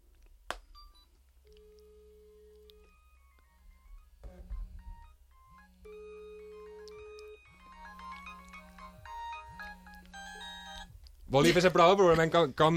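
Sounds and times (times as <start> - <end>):
mobile phone ringtone in electronic tone bursts: 0.8 - 11.0
busier chiming melody: 5.0 - 10.9
speech: 11.3 - 12.7.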